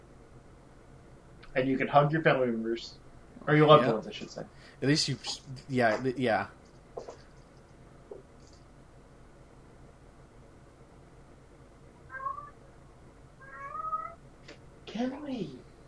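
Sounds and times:
quiet hissy background: 0:00.0 - 0:15.8
speech: 0:01.6 - 0:07.1
faint clicks and rustles: 0:05.0 - 0:08.8
male cat meowing: 0:12.1 - 0:12.6, 0:13.4 - 0:14.2.

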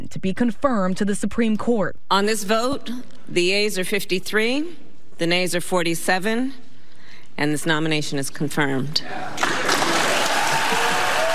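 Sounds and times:
speech: 0:00.1 - 0:06.6, 0:07.4 - 0:09.6
cheers and applause in the Senate chamber after a confirmation vote: 0:09.3 - 0:11.3.

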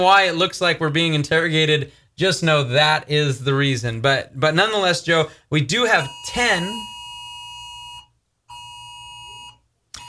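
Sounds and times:
speech: 0:00.0 - 0:06.9
phone emergency heat wave alert alarm: 0:05.9 - 0:10.0.

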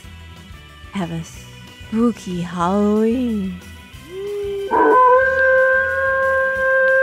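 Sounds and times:
speech: 0:00.9 - 0:03.7
dog howling: 0:04.0 - 0:07.0
faint low rumbling: 0:04.0 - 0:07.0.

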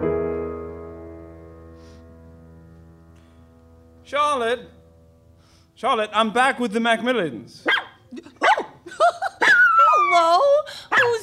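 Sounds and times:
speech: 0:04.1 - 0:04.8, 0:05.8 - 0:07.8
dog barking in high yips: 0:07.6 - 0:08.8, 0:10.9 - 0:11.2
dog whining cry: 0:07.6 - 0:11.2.

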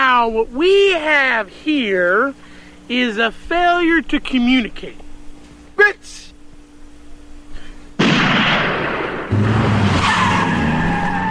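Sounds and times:
speech: 0:00.2 - 0:05.0, 0:05.8 - 0:06.2
single loud gunshot: 0:08.0 - 0:10.1
car engine roaring as it speeds off: 0:09.2 - 0:11.2
car tires screeching: 0:09.3 - 0:11.2.

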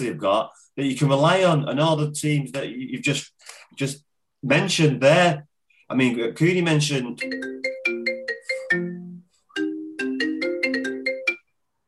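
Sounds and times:
speech: 0:00.0 - 0:07.8
mobile phone ringtone with electronic chime melody: 0:07.2 - 0:11.6.

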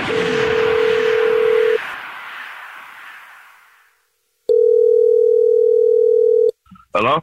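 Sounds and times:
telephone dialing tone with noisy burst: 0:00.1 - 0:01.8, 0:04.5 - 0:06.5
speech: 0:07.0 - 0:07.2.

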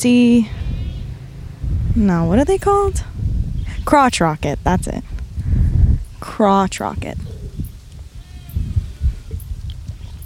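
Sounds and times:
speech: 0:00.0 - 0:00.6, 0:02.0 - 0:03.2, 0:03.9 - 0:05.1, 0:06.2 - 0:07.3
steady low outdoor rumble: 0:00.0 - 0:10.2
goats or sheep bleating faintly: 0:00.5 - 0:01.2, 0:08.0 - 0:09.3.

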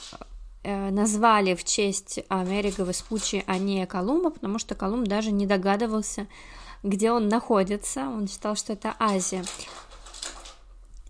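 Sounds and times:
speech: 0:00.1 - 0:09.9
puppy making soft scuffling noise: 0:02.3 - 0:04.0, 0:08.9 - 0:10.7.

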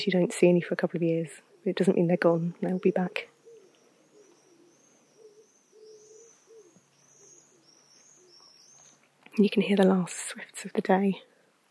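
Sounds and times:
speech: 0:00.0 - 0:03.3, 0:09.4 - 0:11.3
tawny owl hooting behind a church: 0:01.4 - 0:09.0
crickets chirping: 0:02.5 - 0:09.0.

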